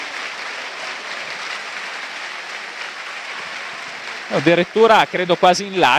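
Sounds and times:
large stadium crowd applauding an injured player: 0:00.0 - 0:05.9
speech: 0:04.3 - 0:05.9.

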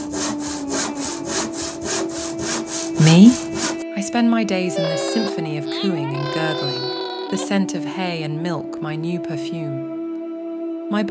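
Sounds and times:
saw cutting wood: 0:00.0 - 0:03.8, 0:04.8 - 0:07.4
speech: 0:03.0 - 0:03.4, 0:04.1 - 0:09.9.

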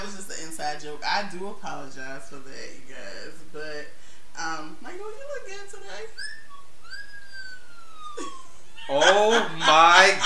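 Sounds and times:
speech: 0:00.6 - 0:06.4, 0:08.2 - 0:10.2
cartoonish whistle sound effect swooping up and gliding down: 0:06.2 - 0:08.3
laughter: 0:08.2 - 0:10.2.

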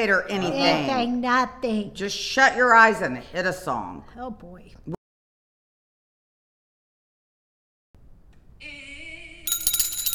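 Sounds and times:
speech: 0:00.0 - 0:05.0
handheld bell ringing: 0:09.5 - 0:10.1.

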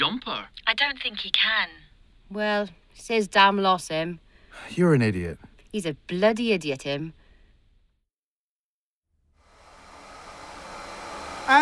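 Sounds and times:
speech: 0:00.7 - 0:07.2
vacuum cleaner running: 0:09.4 - 0:11.5.

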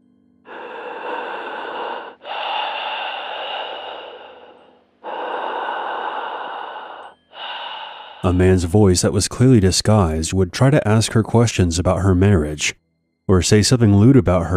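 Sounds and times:
slow heavy raspy breathing over a phone line: 0:00.5 - 0:08.9
speech: 0:08.2 - 0:14.5.

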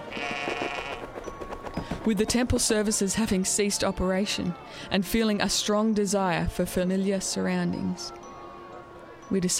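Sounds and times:
lamb bleating while running away: 0:00.1 - 0:01.0
clatter and noise: 0:00.2 - 0:02.9
speech: 0:02.0 - 0:08.2, 0:09.3 - 0:09.5.

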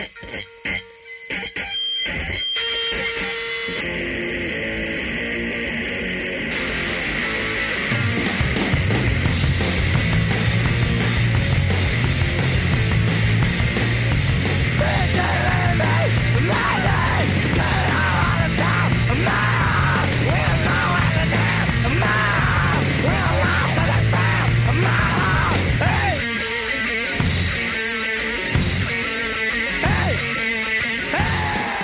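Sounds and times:
loud distorted rock song with screamed vocals: 0:00.0 - 0:31.8.

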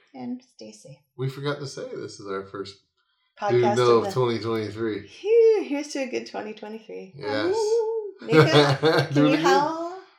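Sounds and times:
speech: 0:00.2 - 0:10.1
laughter: 0:01.2 - 0:02.6, 0:03.5 - 0:05.0, 0:07.2 - 0:09.9
person imitating a howl: 0:03.5 - 0:04.2, 0:07.2 - 0:09.6.

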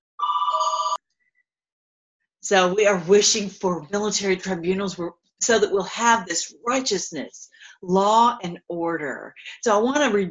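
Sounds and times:
telephone ringing: 0:00.2 - 0:01.0
speech: 0:02.4 - 0:10.2.

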